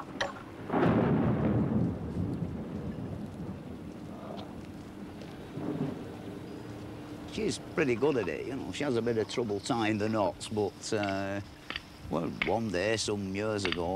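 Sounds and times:
deep roll of thunder: 0.0 - 8.0
steady hissing rainfall in Blackpool: 0.0 - 13.9
speech: 7.4 - 13.9.

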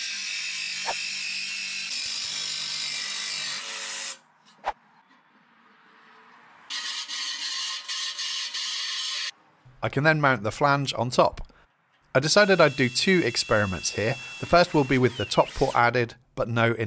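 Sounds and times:
jigsaw with metal-cutting blade cutting an opening for a 125 mm flange: 0.0 - 4.2, 6.7 - 9.3, 12.4 - 15.8
speech: 9.8 - 11.5, 12.2 - 16.8.

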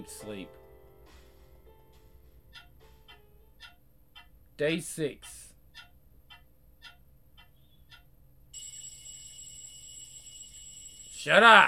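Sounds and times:
speech: 0.0 - 0.6, 4.6 - 5.4, 11.2 - 11.6
clock ticking: 0.0 - 8.2
alarm clock shrill ringing: 8.5 - 11.6.

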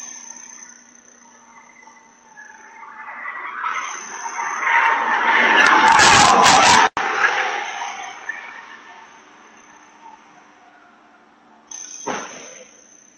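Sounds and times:
car tires screeching and skidding under hard braking: 2.4 - 11.3.

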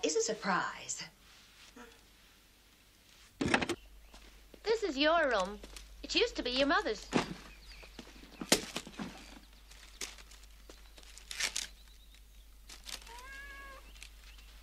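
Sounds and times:
speech: 0.2 - 1.1, 4.8 - 7.3
rustling and crinkling: 1.2 - 14.6
cat meowing: 13.0 - 13.9.

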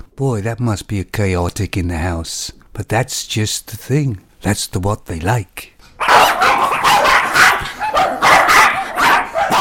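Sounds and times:
speech: 0.2 - 6.6
five small yappy dogs barking outside: 6.0 - 9.6.

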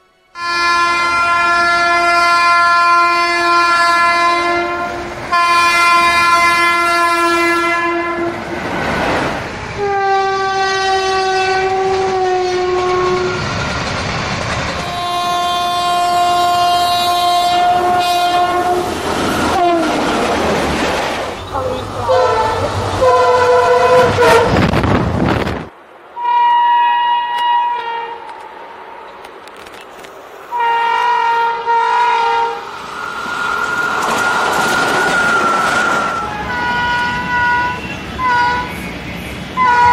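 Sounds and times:
passing train horn blasting in long sustained chords: 0.0 - 8.5, 9.8 - 13.5, 14.8 - 20.0, 21.6 - 24.8, 26.2 - 28.4, 30.5 - 32.8, 35.0 - 38.8, 39.6 - 39.9
passing train wheels rumbling with rail noise: 1.1 - 26.3, 27.2 - 39.9.

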